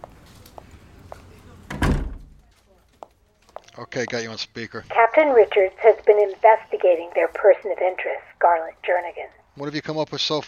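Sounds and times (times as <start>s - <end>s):
low room murmur: 0.0s - 9.9s
heavy door thudding shut: 1.7s - 2.3s
speech: 3.8s - 10.4s.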